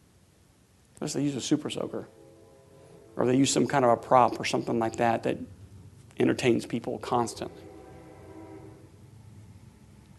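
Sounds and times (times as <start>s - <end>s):
speech: 1.0s - 2.2s, 3.2s - 5.6s, 6.2s - 7.7s
train rolling past with heavy low rumble: 1.1s - 10.1s
brief tonal horn-like note: 1.4s - 5.2s, 6.8s - 9.5s.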